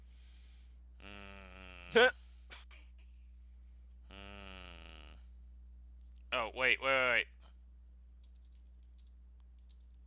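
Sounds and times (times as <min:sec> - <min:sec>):
steady low electrical hum: 0:00.0 - 0:10.0
speech: 0:01.9 - 0:02.2, 0:06.6 - 0:07.3
quiet computer keyboard typing: 0:08.2 - 0:10.0.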